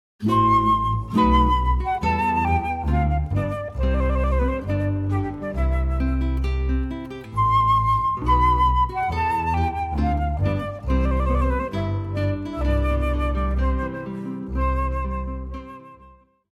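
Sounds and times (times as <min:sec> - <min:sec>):
guitar flute and bass trio playing a wedding march: 0:00.2 - 0:16.3.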